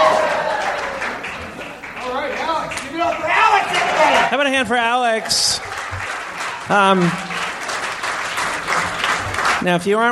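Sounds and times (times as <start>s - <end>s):
loud whooping shout: 0.0s - 1.0s, 3.2s - 4.3s
live crowd applauding and cheering: 0.0s - 10.1s
speech: 4.3s - 5.7s, 6.7s - 7.3s, 9.6s - 10.1s.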